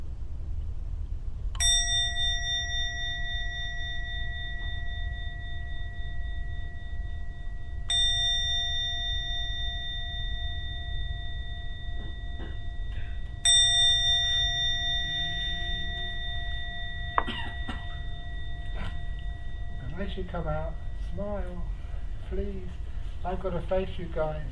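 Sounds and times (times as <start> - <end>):
quiet room hum: 0.0 - 24.5
meditation gong struck and ringing: 1.6 - 24.5
person coughing or clearing throat: 17.2 - 18.0
speech: 20.1 - 24.5.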